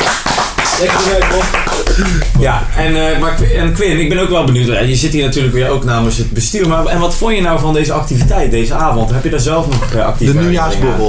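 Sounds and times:
small group applauding with quick overlapping hand claps: 0.0 - 2.8, 9.7 - 11.0
people talking and laughing: 0.8 - 11.0
speech: 0.8 - 11.0.

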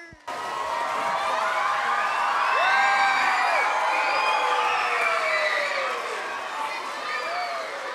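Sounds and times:
large classical concert audience applause: 0.2 - 7.9
shrill audience whistles: 2.0 - 6.1.

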